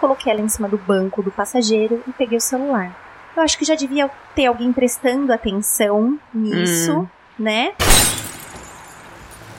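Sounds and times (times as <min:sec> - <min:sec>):
speech: 0:00.0 - 0:08.1
car window glass being smashed: 0:07.8 - 0:09.1.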